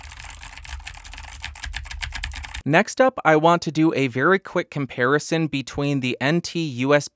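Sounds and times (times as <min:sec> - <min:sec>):
typing on a computer keyboard picked up by a desktop USB microphone: 0:00.0 - 0:02.6
speech: 0:02.6 - 0:07.1.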